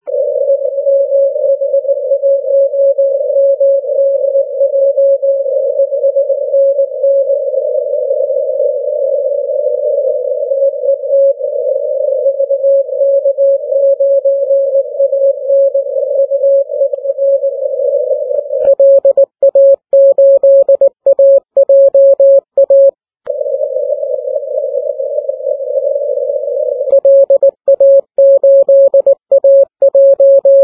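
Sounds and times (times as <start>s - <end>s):
morse code radio tones on the 80m band: 0.0s - 30.6s.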